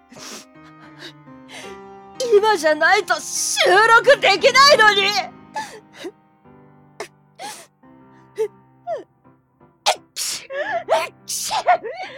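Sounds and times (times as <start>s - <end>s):
speech: 2.3s - 5.4s
person sneezing: 9.9s - 11.8s.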